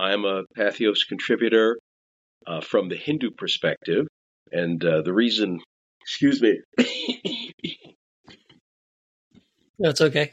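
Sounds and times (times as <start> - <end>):
speech: 0.0 - 1.8, 2.4 - 7.8, 9.8 - 10.3
person coughing: 6.8 - 7.9
throat clearing: 6.8 - 8.0.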